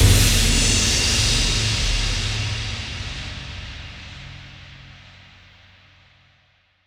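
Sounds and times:
splash hit: 0:00.0 - 0:02.7.

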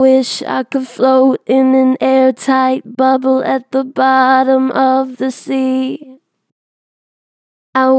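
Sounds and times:
vocals with strong natural vibrato: 0:00.0 - 0:06.2, 0:07.8 - 0:07.9.

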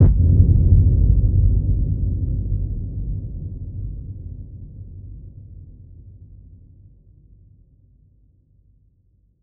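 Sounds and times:
deep hit: 0:00.0 - 0:02.6.

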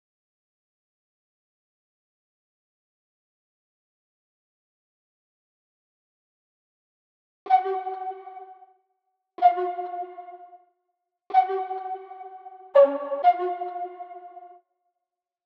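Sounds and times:
flute: 0:07.5 - 0:08.6, 0:09.4 - 0:10.6, 0:11.3 - 0:14.6.

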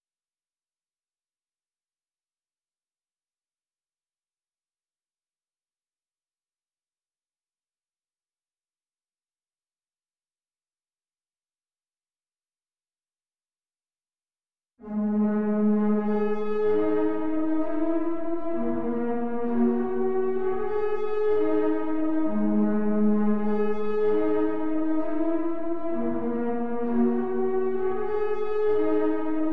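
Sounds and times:
130 BPM G sharp minor synth lead melody loop: 0:14.9 - 0:29.5.

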